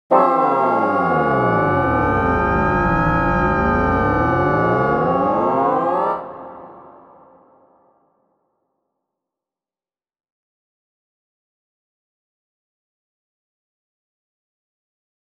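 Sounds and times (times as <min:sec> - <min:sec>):
MIDI bassoon glide: 0:00.1 - 0:07.0.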